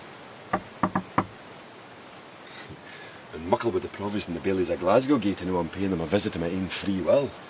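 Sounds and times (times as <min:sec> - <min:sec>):
knocking on a prison door: 0:00.5 - 0:01.4
speech: 0:03.4 - 0:07.4.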